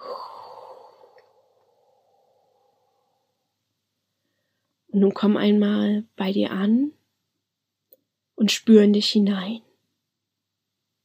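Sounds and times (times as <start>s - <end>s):
deep breath exhale during a guided relaxation breathing exercise: 0.0s - 3.2s
speech: 5.0s - 7.0s, 8.4s - 9.7s.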